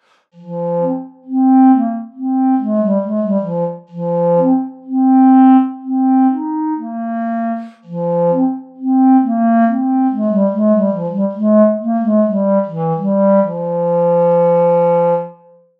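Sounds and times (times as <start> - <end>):
chalumeau playing: 0.4 - 15.3.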